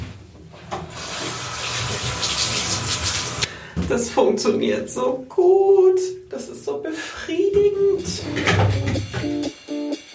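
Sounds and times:
warm water running through a hose over a vacuum cleaner brush in a bathroom: 1.0 - 3.5
speech: 3.9 - 9.6.

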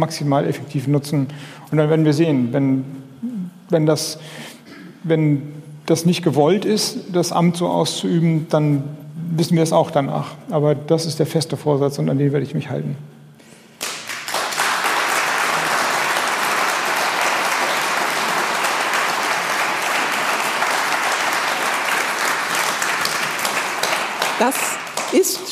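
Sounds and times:
speech: 0.0 - 3.0, 3.7 - 13.1
closing applause from a live audience after an interview with a minister: 13.8 - 25.5.

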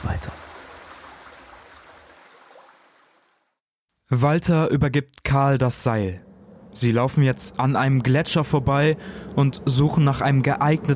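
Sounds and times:
speech: 0.0 - 0.5, 4.1 - 6.2, 6.8 - 10.9
small spring water bubbling from rock: 0.0 - 3.6
low rumble: 5.6 - 10.9.

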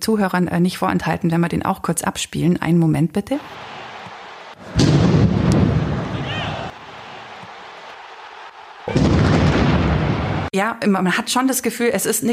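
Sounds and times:
speech: 0.0 - 3.8, 10.5 - 12.3
recorded bomb explosions: 4.6 - 6.8, 8.9 - 10.5.

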